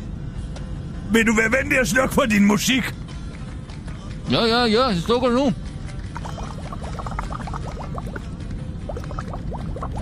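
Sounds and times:
low continuous rumble: 0.0s - 10.0s
speech: 1.1s - 3.0s, 4.3s - 5.6s
hookah being smoked on an airplane bubbling: 6.2s - 8.3s, 8.9s - 10.0s.

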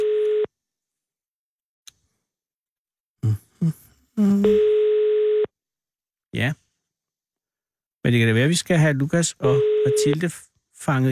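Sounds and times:
telephone call tone while calling back: 0.0s - 0.5s, 4.2s - 5.5s, 9.4s - 10.2s
speech: 3.2s - 4.8s, 6.4s - 6.6s, 8.0s - 11.1s.

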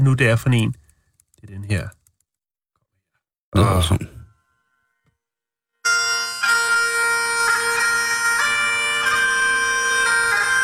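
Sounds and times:
speech: 0.0s - 0.8s, 1.4s - 2.0s, 3.5s - 4.1s
sustained melody of a traditional farewell song: 5.8s - 10.6s.

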